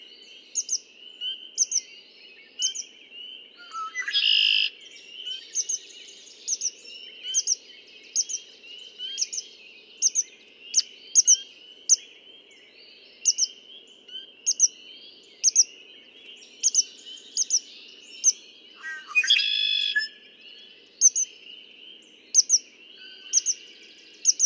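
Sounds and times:
dense background chorus of other birds: 0.0 - 24.4.

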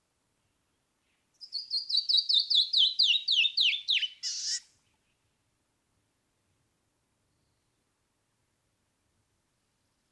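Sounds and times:
canyon wren song of whistled descending notes and buzzy note: 1.3 - 4.9.

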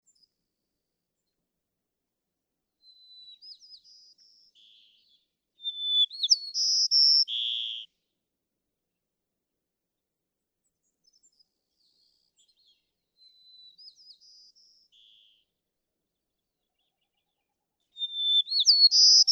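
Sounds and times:
White-crowned Sparrow: 2.8 - 8.0, 10.6 - 19.3.

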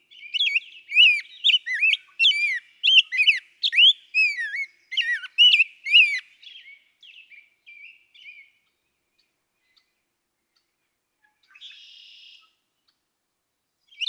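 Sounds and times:
Rose-breasted Grosbeak whistled song: 0.1 - 8.5, 13.9 - 14.0.

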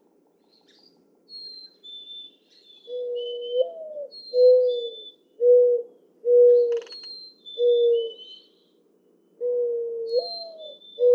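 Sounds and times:
mourning dove song cooing and hooting: 2.9 - 6.9, 7.6 - 8.2, 9.4 - 11.1.

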